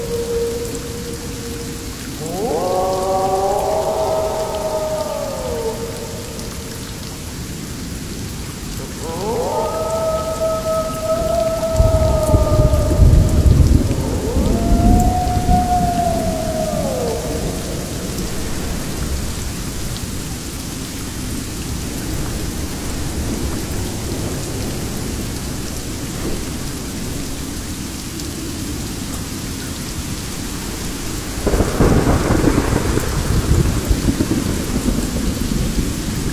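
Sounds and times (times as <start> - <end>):
wavering tonal wolf howls: 0.0 - 7.4, 8.7 - 19.4
thunder rumbling in a jungle: 0.0 - 7.9, 8.7 - 20.3, 31.4 - 36.3
rain in a jungle: 0.0 - 36.3.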